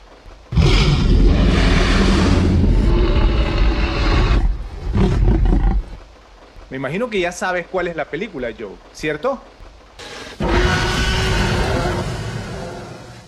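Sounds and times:
Tyrannosaurus rex roar from a film: 0.5 - 6.0, 10.0 - 13.2
speech: 6.8 - 9.6.

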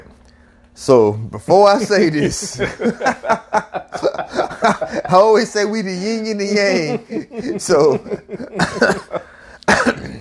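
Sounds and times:
speech: 0.8 - 9.2
laughter: 1.8 - 9.4
throat clearing: 9.6 - 10.2.

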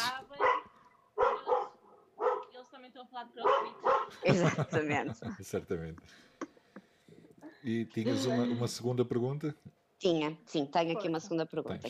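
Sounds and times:
dogs barking: 0.3 - 2.5, 3.4 - 4.2
speech: 3.2 - 6.4, 7.6 - 11.8
laughter: 4.1 - 6.0.

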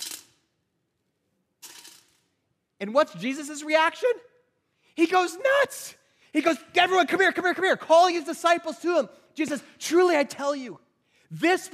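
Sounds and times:
coins dropping: 0.0 - 0.4, 1.6 - 2.3
speech: 2.8 - 4.3, 5.0 - 11.7.

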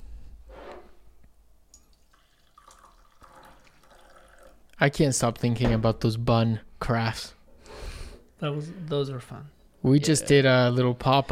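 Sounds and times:
batch brew coffee pouring into a cup: 1.8 - 4.7
speech: 4.8 - 7.4, 8.4 - 11.3.

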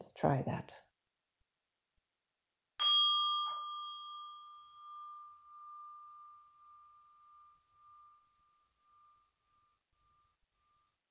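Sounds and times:
speech: 0.0 - 0.8
bell ringing: 2.8 - 8.2.

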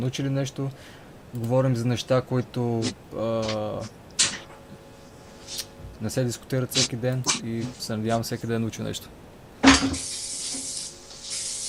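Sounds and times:
speech: 0.0 - 4.0, 6.0 - 9.2, 9.8 - 10.2
short burst of aerosol spray hissing: 10.0 - 11.6.

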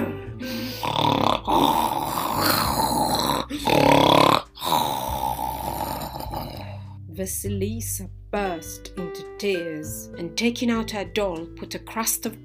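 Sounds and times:
person lying on a bench snoring loudly: 0.0 - 7.0
speech: 7.2 - 12.4.

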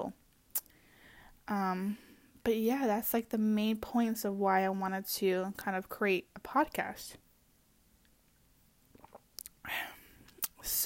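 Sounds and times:
faint wet lip clicks: 0.3 - 0.8, 8.0 - 9.6, 10.2 - 10.6
speech: 1.5 - 7.2, 10.6 - 10.8.

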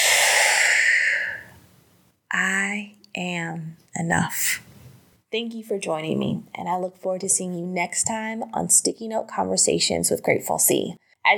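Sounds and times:
slow deep breath in and out during a guided calming exercise: 0.0 - 1.7
speech: 2.3 - 4.7, 5.3 - 11.3.

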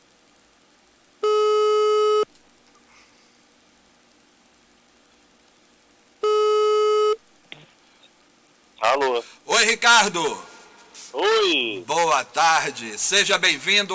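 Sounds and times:
ringing tone of an outgoing telephone call: 1.2 - 2.3, 6.2 - 7.2
speech: 9.0 - 10.5, 11.1 - 13.9.

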